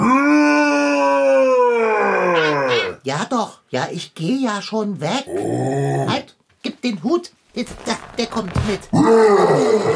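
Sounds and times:
person in a bear costume imitating a bear's roar: 0.0 - 3.0, 5.3 - 6.3, 8.9 - 9.9
speech: 3.1 - 9.9.

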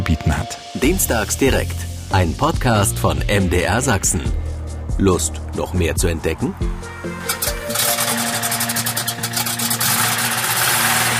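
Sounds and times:
speech: 0.1 - 4.4, 5.0 - 7.5
motor running with hum and rhythmic clatter: 7.2 - 11.1.

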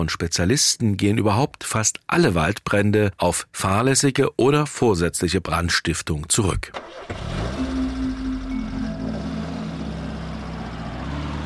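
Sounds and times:
speech: 0.0 - 7.8
car engine rumble while driving to Tharandt near Dresden: 6.8 - 11.4.

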